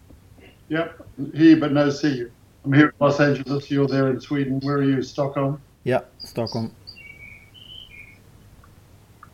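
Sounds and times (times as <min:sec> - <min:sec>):
low steady rumble: 0:00.0 - 0:09.3
speech: 0:00.7 - 0:06.8
bird chirping: 0:03.4 - 0:05.4, 0:06.0 - 0:09.3.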